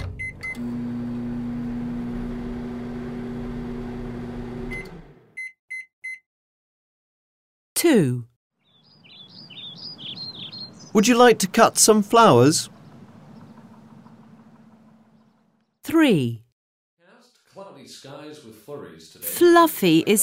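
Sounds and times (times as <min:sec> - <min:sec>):
microwave oven with popcorn inside humming: 0:00.0 - 0:05.3, 0:12.2 - 0:15.5
speech: 0:00.6 - 0:00.9, 0:07.9 - 0:08.3, 0:11.0 - 0:12.8, 0:16.0 - 0:16.4, 0:17.8 - 0:20.2
microwave oven short beeps: 0:05.4 - 0:06.2
faint chirping: 0:08.6 - 0:11.0, 0:12.6 - 0:15.6.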